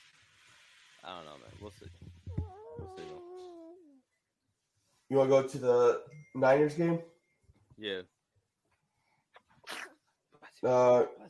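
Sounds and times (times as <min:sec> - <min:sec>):
speech: 0:01.0 - 0:03.5, 0:05.1 - 0:07.1, 0:07.8 - 0:08.1, 0:10.6 - 0:11.2
person sneezing: 0:09.6 - 0:10.0.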